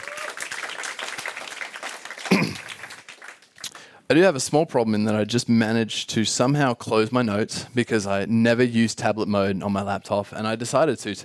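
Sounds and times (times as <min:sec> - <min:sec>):
audience applause: 0:00.0 - 0:03.9
speech: 0:04.1 - 0:11.2.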